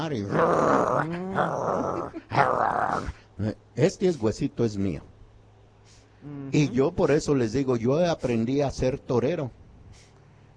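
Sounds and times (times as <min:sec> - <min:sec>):
speech: 0:00.0 - 0:05.1, 0:06.2 - 0:10.0
person imitating a dog growling: 0:00.2 - 0:03.2, 0:06.2 - 0:06.9.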